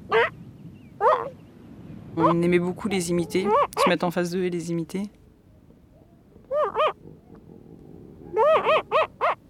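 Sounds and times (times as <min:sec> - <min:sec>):
very young hungry elephant seal pup giving nasal yelping calls: 0:00.0 - 0:00.4, 0:01.0 - 0:01.4, 0:03.2 - 0:03.9, 0:06.0 - 0:07.5, 0:08.2 - 0:09.4
low steady rumble: 0:00.0 - 0:09.4
speech: 0:02.2 - 0:05.2.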